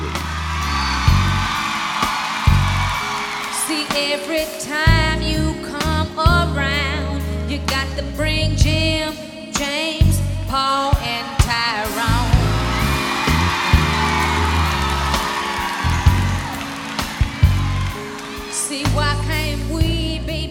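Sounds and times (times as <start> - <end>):
concert crowd of mostly women screaming and whooping: 0.0 - 4.9, 11.0 - 19.6
live band's loud bass-heavy music: 0.0 - 9.2, 10.0 - 20.4.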